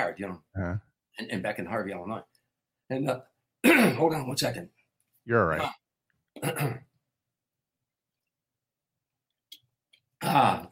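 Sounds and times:
speech: 0:00.1 - 0:05.8, 0:06.4 - 0:06.9, 0:10.2 - 0:10.6
harsh throat-clearing from a dry throat: 0:03.6 - 0:04.1, 0:06.4 - 0:07.0, 0:10.2 - 0:10.6.

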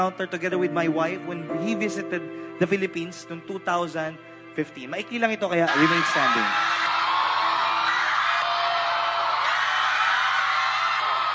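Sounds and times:
speech: 0:00.0 - 0:06.8
large crowd shouting and cheering at UST in the Philippines: 0:05.7 - 0:11.3.

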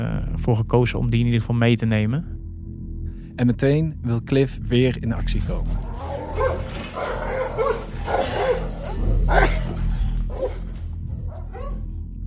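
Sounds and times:
speech: 0:00.0 - 0:02.4, 0:03.4 - 0:05.9
dog barking: 0:05.8 - 0:11.9.

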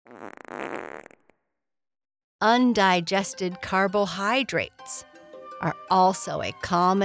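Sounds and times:
drawn-out fluttering fart: 0:00.0 - 0:01.5
speech: 0:02.4 - 0:07.0.

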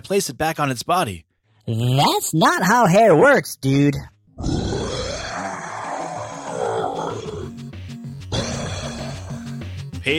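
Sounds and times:
speech: 0:00.0 - 0:04.6
guard monster roaring and growling: 0:04.4 - 0:07.5, 0:08.3 - 0:09.5.

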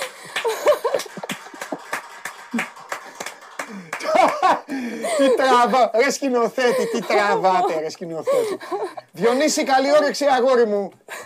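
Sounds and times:
small crowd hand claps: 0:00.0 - 0:05.2
laughter: 0:00.4 - 0:01.9, 0:04.0 - 0:05.9, 0:06.6 - 0:09.6
speech: 0:04.7 - 0:11.1.

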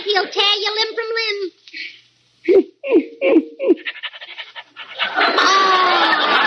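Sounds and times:
speech: 0:00.2 - 0:01.6
St. Bernard dog panting: 0:03.8 - 0:05.2
laughter: 0:04.8 - 0:06.4.

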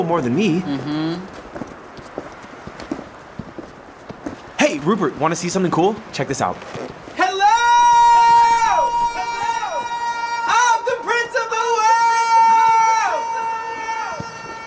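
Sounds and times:
speech: 0:00.0 - 0:01.4, 0:04.8 - 0:06.8
loud drawn-out shouted call echoing: 0:07.2 - 0:14.6.

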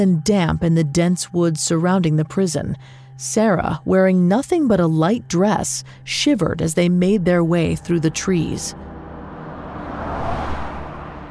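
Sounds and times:
speech: 0:00.0 - 0:08.9
car driving past and slowing down with engine and road rumble: 0:08.0 - 0:11.2.

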